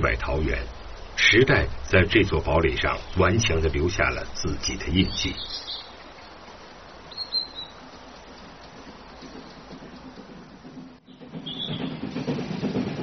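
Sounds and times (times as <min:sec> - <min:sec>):
speech: 0:00.0 - 0:05.7
train rumbling on railway tracks: 0:00.0 - 0:13.0
high bird chirps: 0:02.6 - 0:12.8.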